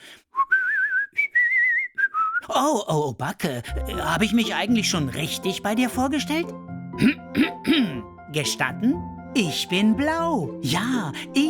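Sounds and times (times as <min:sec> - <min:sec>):
person whistling a casual tune while waiting: 0:00.3 - 0:02.5
speech: 0:02.6 - 0:11.4.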